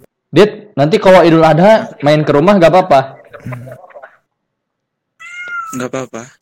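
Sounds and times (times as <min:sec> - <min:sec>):
speech: 0:00.3 - 0:03.9, 0:05.7 - 0:06.4
pet cat meowing: 0:05.2 - 0:06.0.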